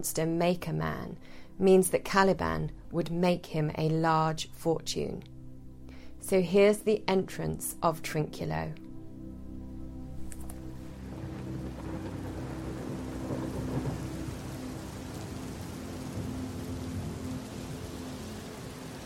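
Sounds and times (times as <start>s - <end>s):
speech: 0.0s - 5.3s, 6.2s - 8.8s
steady dense rain in a thunderstorm: 10.4s - 19.0s
deep thunder rumbling: 10.9s - 19.0s.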